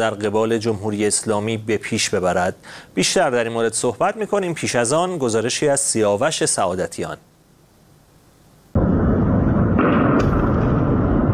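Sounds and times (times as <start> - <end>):
speech: 0.0 - 7.3
further missile blasts cracking at the port: 8.8 - 11.3
missile explosion at the port of Latakia container area: 8.8 - 11.3
sustained roaring rumble of explosions at the port: 8.8 - 11.3.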